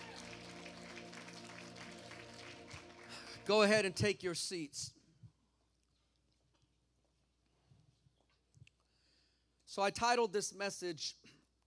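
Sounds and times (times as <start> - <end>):
crowd applauding: 0.0 - 4.2
speech: 3.5 - 5.0, 9.8 - 11.3.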